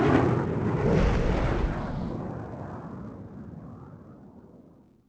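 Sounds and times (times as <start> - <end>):
F16 jet flyby: 0.1 - 2.7.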